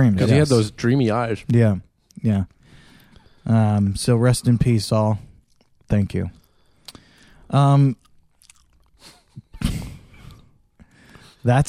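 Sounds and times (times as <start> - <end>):
speech: 0.0 - 2.6, 3.4 - 5.3, 5.9 - 6.4, 7.5 - 8.0, 11.4 - 11.6
loud chewing of food: 7.9 - 9.4.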